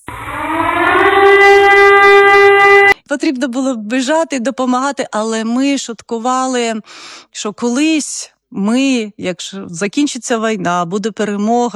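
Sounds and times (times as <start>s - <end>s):
air raid siren wailing: 0.0s - 3.0s
speech: 3.2s - 11.7s.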